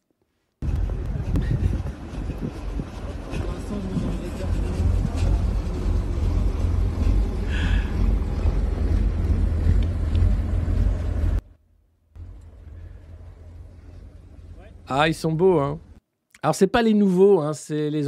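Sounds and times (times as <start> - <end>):
armored vehicle tracks rattling: 0.6 - 11.4, 12.2 - 16.0
wind buffeting the microphone: 0.6 - 11.4
older-model heavy armored vehicles engine drone: 0.6 - 11.6, 12.2 - 16.0
speech: 14.9 - 18.0.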